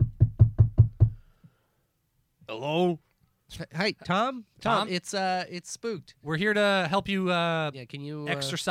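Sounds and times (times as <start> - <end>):
knocking on a door: 0.0 - 1.2
speech: 2.5 - 8.7.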